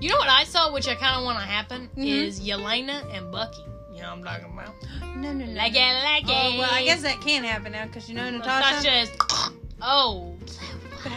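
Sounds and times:
speech: 0:00.0 - 0:11.1
short throaty croak resembling a burp: 0:09.2 - 0:09.6.

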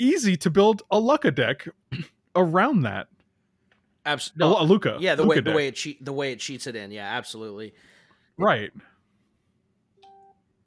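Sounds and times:
speech: 0:00.0 - 0:03.2, 0:04.0 - 0:08.9
short electronic two-tone phone beep: 0:10.0 - 0:10.4.

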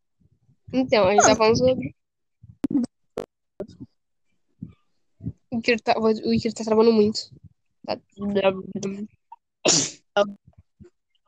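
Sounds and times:
speech: 0:00.7 - 0:02.0, 0:05.6 - 0:10.4
loud sharp sneeze: 0:09.7 - 0:10.1.

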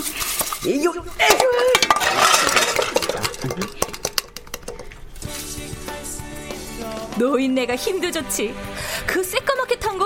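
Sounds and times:
blackened metal pot clanking and scraping as it is handled: 0:00.0 - 0:05.2
speech: 0:00.6 - 0:01.7, 0:07.2 - 0:10.0.

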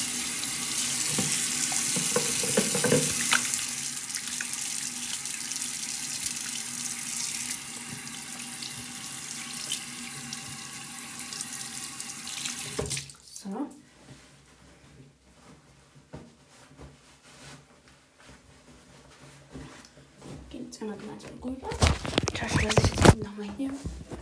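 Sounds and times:
running tap water splashing into a sink: 0:00.0 - 0:13.2
speech: 0:20.8 - 0:24.0
handling sounds: 0:21.6 - 0:24.2.

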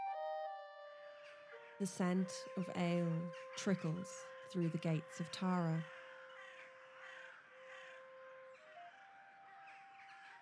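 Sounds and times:
crows cawing over a field: 0:01.2 - 0:10.4
speech: 0:01.8 - 0:06.0
steady sustained tonal drone: 0:01.8 - 0:07.9.

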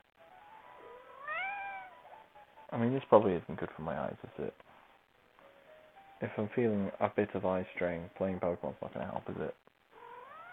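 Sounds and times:
cat meowing: 0:00.8 - 0:02.1, 0:09.9 - 0:10.5
speech: 0:02.7 - 0:04.7, 0:06.2 - 0:09.7.

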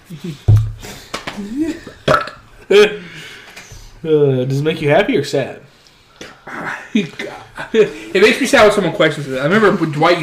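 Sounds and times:
speech: 0:00.1 - 0:00.6, 0:01.4 - 0:03.1, 0:04.0 - 0:05.7, 0:06.5 - 0:10.2
loud deliberate burp: 0:02.1 - 0:02.4.

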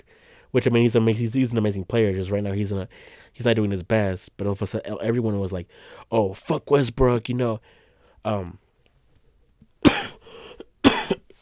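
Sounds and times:
speech: 0:00.5 - 0:08.6
harsh coughs: 0:09.8 - 0:11.3.

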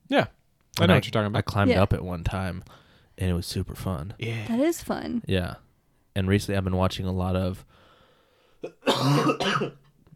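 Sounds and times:
speech: 0:00.1 - 0:05.6, 0:06.2 - 0:07.8, 0:08.6 - 0:09.8
wet coughing bringing up phlegm: 0:08.6 - 0:09.9.

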